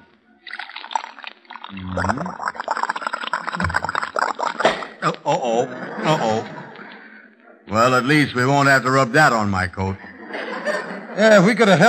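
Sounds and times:
liquid pouring and splashing into a shaving mug: 0.4s - 5.0s
speech: 1.7s - 2.7s, 5.0s - 6.6s, 7.7s - 10.0s, 11.2s - 11.8s
laughter: 5.0s - 8.6s, 9.8s - 11.8s.

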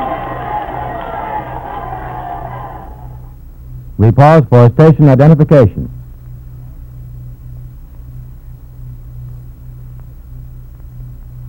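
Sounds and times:
large crowd of spectators cheering and shouting in a stage play: 0.0s - 3.3s
speech: 4.0s - 6.0s.

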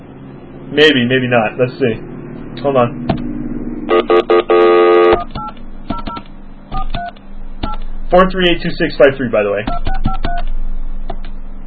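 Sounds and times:
low steady hum: 0.0s - 11.6s
speech: 0.7s - 3.3s, 8.1s - 9.9s
telephone keypad touch-tones beeping: 3.9s - 7.9s, 9.7s - 10.5s.

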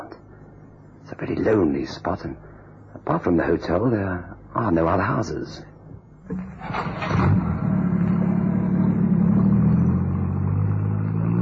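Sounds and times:
speech: 1.2s - 5.7s
car engine starting and accelerating as the car pulls away: 6.3s - 11.3s.

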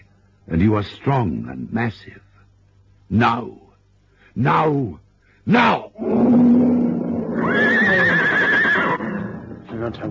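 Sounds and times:
speech: 0.5s - 2.3s, 3.1s - 3.6s, 4.4s - 6.7s, 9.9s - 10.1s
horse neighing shrilly in panic: 6.0s - 9.6s.

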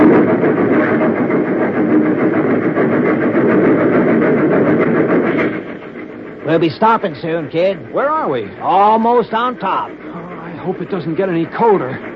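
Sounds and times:
train engine rushing into a snow shed: 0.0s - 12.1s
speech: 6.6s - 10.0s, 10.6s - 12.1s.

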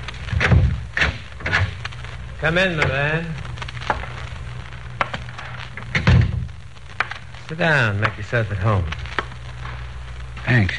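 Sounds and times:
hotel corridor door opening with a low rumbling thud: 0.3s - 1.8s, 5.9s - 6.5s
speech: 2.4s - 3.4s, 7.5s - 9.1s, 10.5s - 10.7s.

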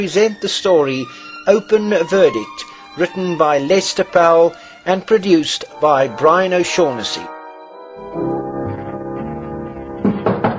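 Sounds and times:
speech: 0.0s - 7.4s
sustained musical tone: 0.0s - 10.3s
firm knocks on a door: 10.0s - 10.5s.

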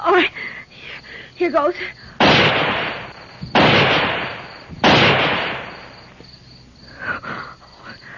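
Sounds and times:
noise: 0.0s - 8.1s
speech: 0.2s - 0.5s, 1.4s - 2.0s
gunshots fired into the air as a signal: 2.2s - 6.0s.

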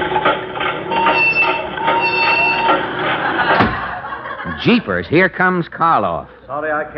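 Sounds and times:
dehydrator machine starting up and running loudly: 0.0s - 4.0s
laughter: 2.5s - 6.5s
speech: 4.6s - 6.9s.

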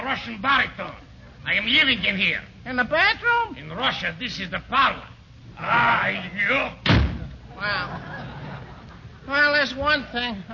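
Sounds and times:
speech: 0.1s - 6.9s, 7.6s - 8.2s, 9.3s - 10.5s
door slamming shut: 6.8s - 7.4s
laughter: 7.4s - 9.5s.

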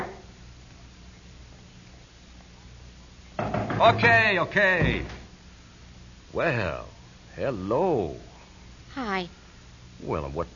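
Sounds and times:
quiet steady hum: 0.0s - 10.5s
sharp knocking on a door: 3.4s - 4.1s, 4.8s - 5.2s
speech: 3.8s - 5.2s, 6.3s - 8.3s, 9.0s - 9.4s, 10.0s - 10.5s.

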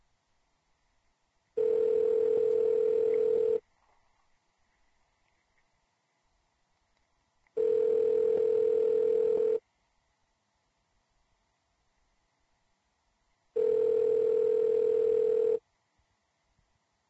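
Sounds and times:
outgoing phone call ringing tone: 1.6s - 3.6s, 7.6s - 9.6s, 13.6s - 15.6s.

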